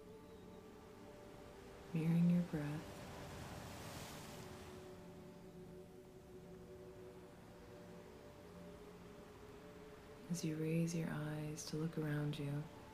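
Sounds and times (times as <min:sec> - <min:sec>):
low steady hum: 0:00.0 - 0:12.9
ocean waves washing: 0:00.6 - 0:10.6
speech: 0:01.9 - 0:03.0, 0:10.3 - 0:12.8.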